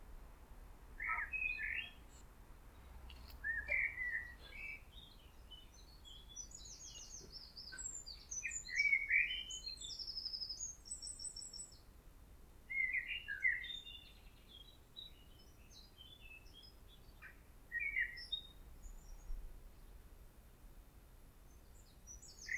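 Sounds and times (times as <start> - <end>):
faint background noise: 0.0 - 22.5
common blackbird Turdus merula singing: 1.0 - 2.0, 3.4 - 11.8, 12.7 - 19.3, 22.1 - 22.5.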